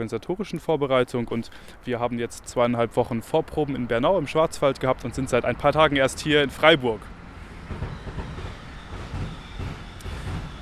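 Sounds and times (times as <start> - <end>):
speech: 0.0 - 7.9
freight train passing on freight bypass railway in Freiburg Germany: 2.4 - 10.6
freight train wheels clacking over rail joints: 3.2 - 10.6
high squeal of freight train: 7.0 - 10.6.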